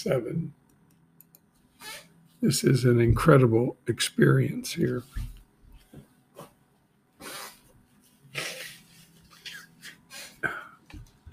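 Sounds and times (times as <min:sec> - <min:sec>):
speech: 0:00.0 - 0:00.6, 0:02.4 - 0:05.3
person blowing nose: 0:07.2 - 0:07.7, 0:08.3 - 0:10.4
sniffs and snorts: 0:07.2 - 0:07.7.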